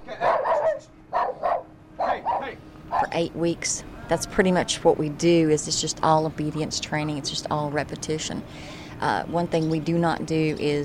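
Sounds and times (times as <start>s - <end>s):
dogs barking during obedience training in an outdoor prison courtyard: 0.2s - 3.2s
speech: 3.1s - 10.8s.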